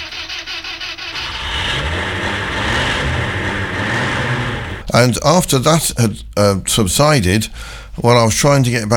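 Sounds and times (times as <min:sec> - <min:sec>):
car engine cranking and starting into a rumbling idle: 0:00.0 - 0:05.2
speech: 0:05.0 - 0:08.9.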